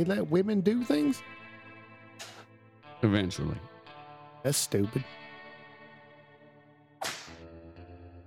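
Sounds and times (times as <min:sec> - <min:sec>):
speech: 0:00.0 - 0:01.4, 0:03.0 - 0:03.7, 0:04.4 - 0:05.2
loud sharp whip crack: 0:07.0 - 0:07.5.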